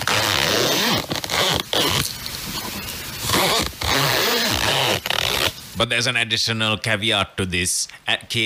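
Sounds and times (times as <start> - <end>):
zipper being zipped: 0.0 - 5.6
speech: 5.8 - 8.4.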